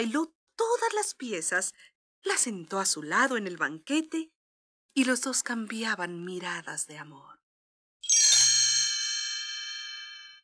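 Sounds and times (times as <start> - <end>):
speech: 0.0 - 4.4, 5.0 - 7.3
clock bell striking midnight: 8.1 - 10.4.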